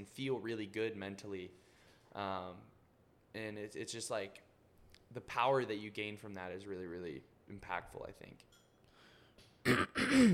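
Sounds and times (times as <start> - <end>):
speech: 0.0 - 4.5, 5.1 - 8.6, 9.6 - 10.3
person clearing throat: 9.6 - 10.3.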